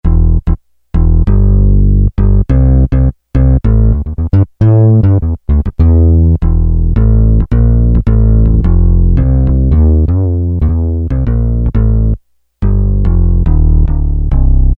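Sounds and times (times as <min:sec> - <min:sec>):
fingered bass on Roland W-30 factory performance patch: 0:00.0 - 0:14.7.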